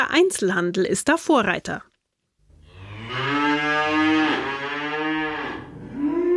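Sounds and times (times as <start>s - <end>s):
speech: 0.0s - 1.9s
faint hum of barn activity: 2.2s - 6.3s
dairy cows mooing in a barn on a family dairy farm in Pegnitz: 2.6s - 6.3s.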